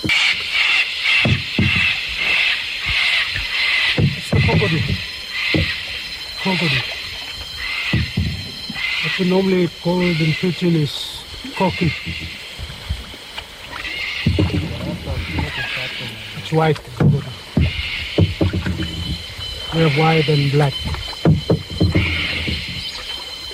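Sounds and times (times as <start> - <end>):
water sloshing around a raft drifting on a river: 0.0 - 23.5
people talking and calling out: 4.0 - 12.4, 13.7 - 22.7.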